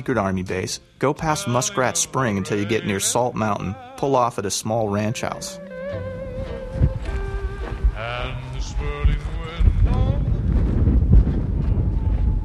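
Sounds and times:
speech: 0:00.0 - 0:06.9
strong dusty wind blowing outdoors: 0:05.9 - 0:12.4.

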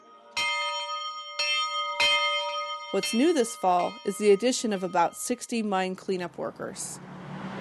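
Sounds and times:
church bell ringing to announce services in a small town: 0:00.0 - 0:05.4
speech: 0:02.9 - 0:07.1.

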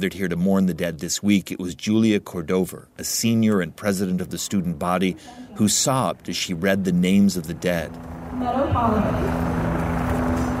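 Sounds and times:
speech: 0:00.0 - 0:09.9
helicopters hovering overhead: 0:03.9 - 0:10.5.

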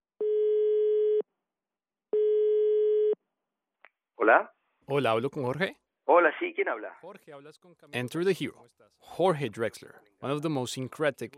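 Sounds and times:
telephone ringing tone of a call to Madrid: 0:00.2 - 0:01.2, 0:02.2 - 0:03.2
speech: 0:04.2 - 0:11.3.

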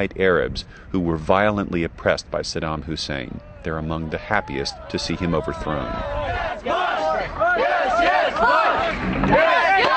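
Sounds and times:
speech: 0:00.0 - 0:06.8
large crowd cheering and shouting at an impromptu street celebration around a military convoy: 0:03.4 - 0:09.9.

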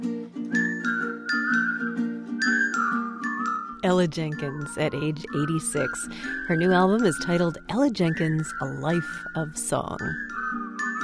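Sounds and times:
person whistling a bright sliding tune: 0:00.4 - 0:11.0
chiming musical accompaniment: 0:00.6 - 0:11.0
speech: 0:03.8 - 0:10.3.

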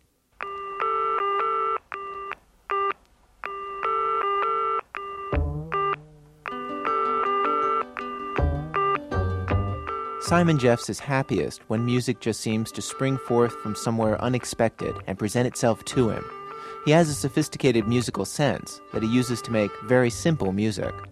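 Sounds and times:
telephone in England ringing while calling someone: 0:00.4 - 0:02.9, 0:03.5 - 0:12.2, 0:15.7 - 0:21.1
telephone busy signal in England: 0:03.9 - 0:07.8, 0:08.7 - 0:10.6
speech: 0:10.3 - 0:21.1.

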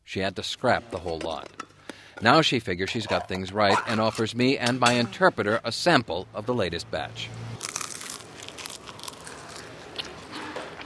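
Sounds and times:
speech: 0:00.1 - 0:01.6, 0:02.2 - 0:07.4
person crunching crispy canned fried frog: 0:07.6 - 0:10.8.

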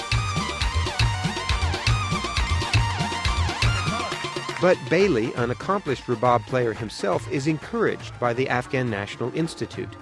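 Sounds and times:
bright busy synthesized melody with bending sliding notes: 0:00.0 - 0:06.5
steady driving bass beat: 0:00.0 - 0:07.3
electronic one-man band music at an Afghan wedding: 0:00.0 - 0:10.0
speech: 0:04.6 - 0:10.0.

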